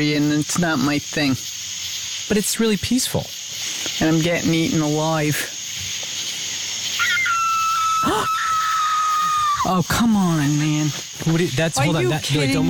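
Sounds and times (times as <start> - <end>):
speech: 0.0 - 1.6, 2.3 - 3.4, 4.0 - 5.5, 9.6 - 12.6
insects chirring at night: 0.0 - 12.6
coyote or fox screaming at night in countryside: 6.8 - 9.9.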